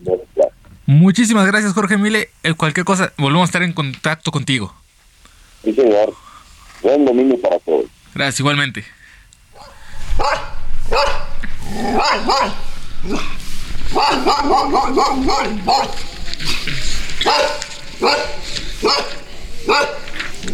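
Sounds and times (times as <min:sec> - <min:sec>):
speech: 0:00.9 - 0:04.8, 0:05.6 - 0:06.2, 0:06.8 - 0:09.0, 0:11.7 - 0:20.5
dogs barking with sharp barks and higher yips: 0:09.6 - 0:13.3, 0:13.9 - 0:20.2.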